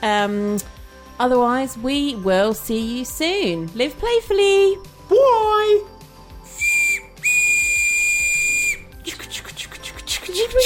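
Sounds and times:
speech: 0.0s - 6.0s, 10.4s - 10.6s
shrill whistle blasts: 6.5s - 8.9s.

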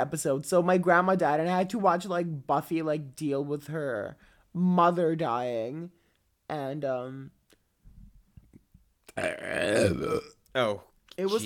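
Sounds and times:
speech: 0.0s - 7.4s, 9.2s - 11.4s
loud, long, low gravelly belch: 9.1s - 10.4s.

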